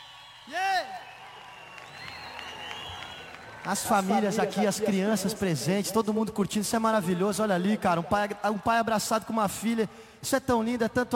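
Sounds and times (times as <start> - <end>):
loud cheering whoop: 0.0 - 4.4
audience applause: 0.0 - 5.3
crowd noise: 0.0 - 10.0
speech: 3.6 - 11.1.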